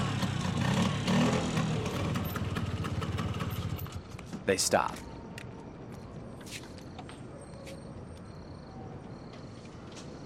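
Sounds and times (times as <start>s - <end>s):
scooter's small engine droning as it rides along: 0.0s - 4.1s
speech: 4.5s - 5.1s.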